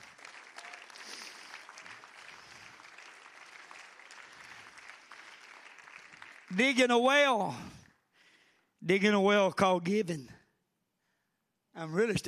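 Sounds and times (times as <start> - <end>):
audience clapping: 0.0 - 8.0
speech: 6.6 - 7.8, 8.9 - 10.4, 11.8 - 12.2.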